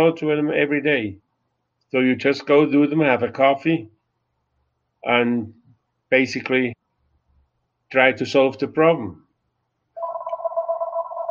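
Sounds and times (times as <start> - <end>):
speech: 0.0 - 1.2, 1.9 - 4.0, 5.0 - 6.8, 7.9 - 9.2
phone ringing with a steady electronic warble: 10.0 - 11.3.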